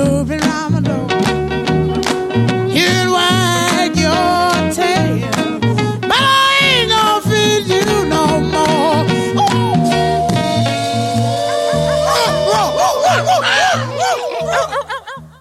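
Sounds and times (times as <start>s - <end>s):
recorded song with sung melody and full band: 0.0s - 15.3s
laughter: 11.2s - 15.3s.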